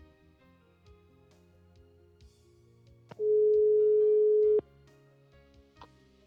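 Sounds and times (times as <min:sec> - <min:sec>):
telephone tone from a call that will not go through: 0:03.2 - 0:04.6.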